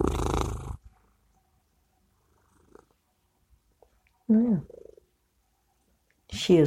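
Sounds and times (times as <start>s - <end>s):
female blue smoke Maine Coon cat purring on owner's lap: 0.0s - 1.4s, 2.0s - 3.4s, 4.3s - 5.2s
speech: 6.4s - 6.6s.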